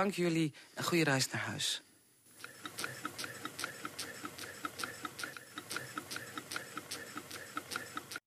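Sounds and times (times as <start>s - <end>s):
speech: 0.0s - 1.9s
small Stirling engines clattering and ticking: 2.4s - 8.2s.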